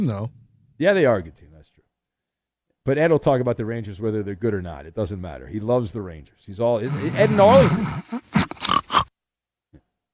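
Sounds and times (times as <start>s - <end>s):
speech: 0.0s - 1.5s, 2.8s - 8.4s
loud snoring snort with rough grunting bursts: 6.9s - 9.1s.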